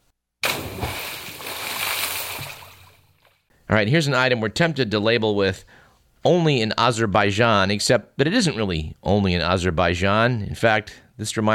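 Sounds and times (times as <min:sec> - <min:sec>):
splash of someone cannonballing into water: 0:00.4 - 0:03.4
speech: 0:03.7 - 0:11.5.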